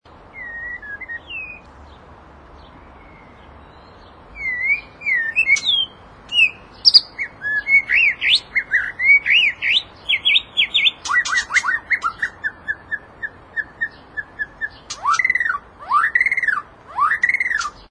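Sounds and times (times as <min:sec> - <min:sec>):
white-rumped shama mating call: 0:04.4 - 0:17.9.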